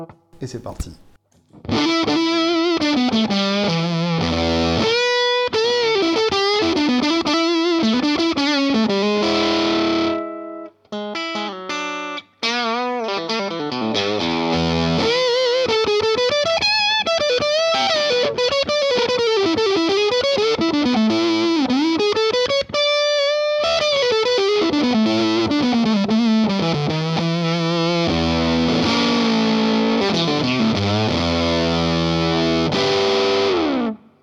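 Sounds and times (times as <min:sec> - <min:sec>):
speech: 0:00.4 - 0:01.1, 0:03.1 - 0:03.8
electric guitar through a germanium transistor distortion pedal: 0:01.6 - 0:10.5, 0:11.2 - 0:34.1.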